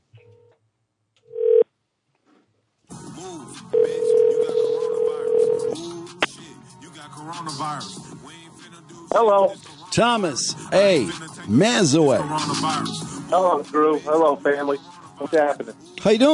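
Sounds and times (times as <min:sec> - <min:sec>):
short electronic phone tone: 0:01.3 - 0:01.6, 0:03.8 - 0:05.8
speech: 0:09.2 - 0:16.3.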